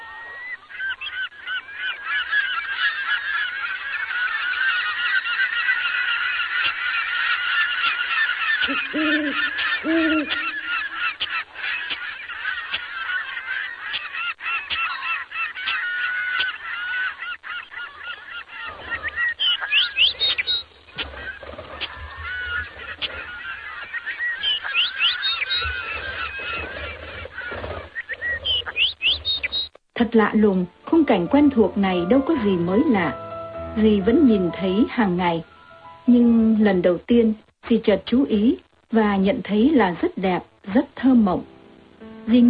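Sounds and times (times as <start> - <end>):
flock of seagulls calling over the sea: 0.0 - 36.9
seagulls flapping wings: 0.4 - 29.7
speech: 30.1 - 33.2, 33.8 - 35.5, 36.1 - 41.5, 42.3 - 42.4.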